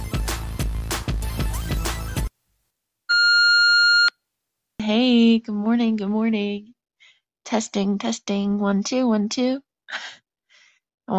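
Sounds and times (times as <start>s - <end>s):
brief burst of upbeat music: 0.0s - 2.3s
steady electronic voicemail beep tone: 3.1s - 4.1s
speech: 4.9s - 6.8s, 7.5s - 10.2s.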